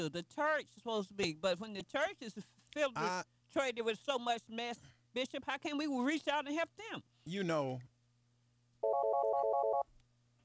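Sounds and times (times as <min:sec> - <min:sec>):
speech: 0:00.0 - 0:07.9
telephone ringing with a forwarded call: 0:08.8 - 0:09.9.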